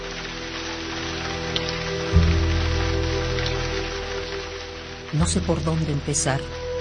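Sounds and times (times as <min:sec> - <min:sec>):
steady rain pattering on a hard surface: 0:00.0 - 0:06.8
speech: 0:05.2 - 0:06.6.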